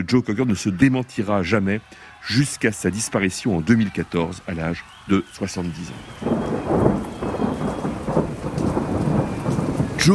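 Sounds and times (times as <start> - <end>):
speech: 0.0 - 7.2
torrential rain pouring in a thunderstorm: 2.0 - 10.1
low thunder rumbling: 5.9 - 10.1.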